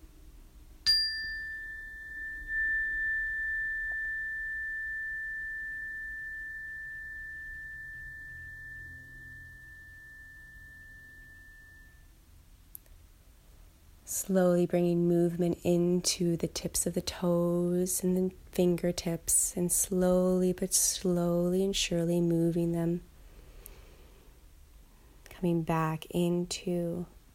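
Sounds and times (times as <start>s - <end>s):
meditation bell ringing: 0.9s - 12.2s
speech: 14.1s - 23.1s, 25.4s - 27.2s.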